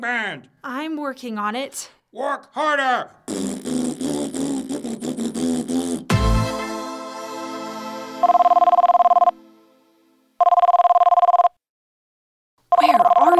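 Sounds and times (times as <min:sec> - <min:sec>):
speech: 0:00.0 - 0:04.5, 0:05.4 - 0:06.2
telephone ringing in buzzing bursts, unanswered: 0:08.2 - 0:09.4, 0:10.4 - 0:11.6, 0:12.7 - 0:13.3.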